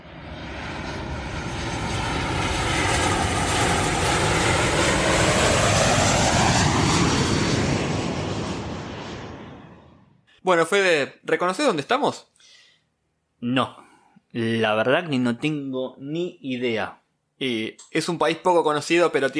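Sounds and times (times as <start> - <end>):
airplane engine droning in flight: 0.0 - 10.3
speech: 10.5 - 12.3, 13.4 - 19.3.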